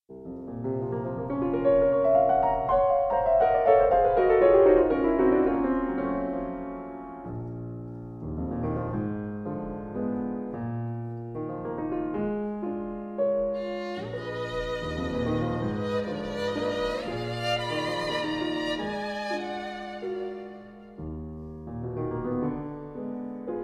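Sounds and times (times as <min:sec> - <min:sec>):
piano: 0:00.0 - 0:23.6
violin: 0:13.3 - 0:21.4.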